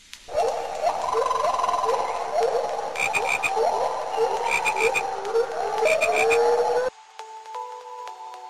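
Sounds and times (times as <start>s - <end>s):
dense chorus of frogs croaking: 0.3s - 6.9s.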